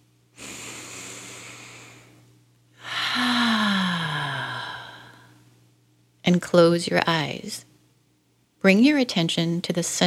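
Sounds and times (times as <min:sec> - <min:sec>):
faint steady hum: 0:00.0 - 0:10.0
deep slow relaxation breath in and out: 0:00.4 - 0:05.5
speech: 0:06.3 - 0:07.7, 0:08.6 - 0:10.0.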